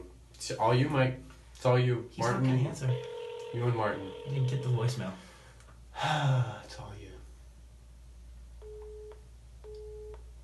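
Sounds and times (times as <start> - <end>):
low hiss: 0.0 - 10.4
speech: 0.4 - 5.3, 6.0 - 7.0
telephone busy signal: 2.8 - 4.8.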